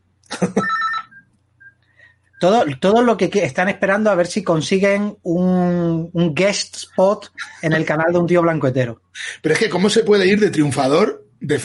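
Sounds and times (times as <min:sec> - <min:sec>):
speech: 0:00.4 - 0:00.6, 0:02.4 - 0:11.6
telephone ringing: 0:00.4 - 0:01.3.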